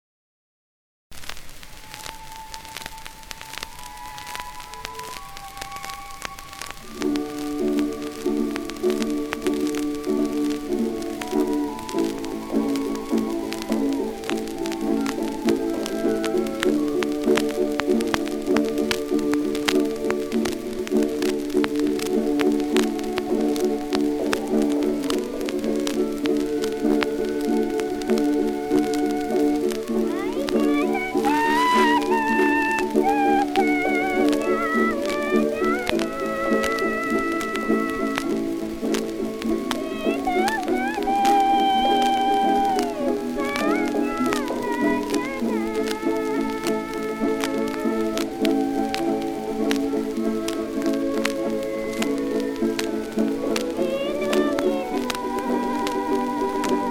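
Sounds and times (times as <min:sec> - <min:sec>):
kroncong music: 0:01.7 - 0:56.8.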